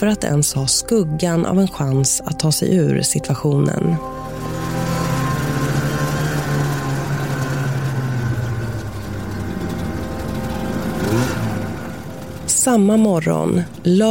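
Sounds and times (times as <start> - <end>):
speech: 0.0 - 4.7, 12.7 - 14.1
snowmobile engine revving on the way to a lake in Anarisfjällen: 3.6 - 14.1.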